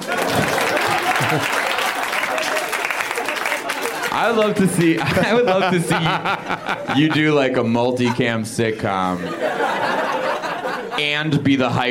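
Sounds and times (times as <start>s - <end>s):
crowd applauding: 0.0s - 5.9s
laughter: 0.0s - 11.8s
speech: 1.3s - 1.6s, 4.2s - 10.0s, 11.0s - 11.8s.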